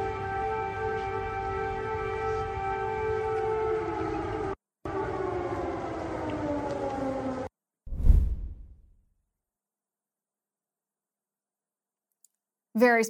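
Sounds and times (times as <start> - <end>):
air raid siren wailing in Ukraine: 0.0 - 7.6
short whooshing burst: 7.9 - 8.9
speech: 12.8 - 13.0.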